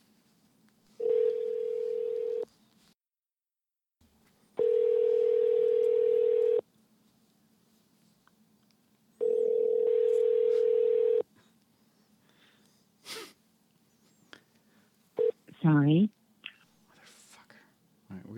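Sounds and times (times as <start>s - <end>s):
telephone dial tone: 1.0s - 2.4s, 4.6s - 6.6s, 9.2s - 11.2s.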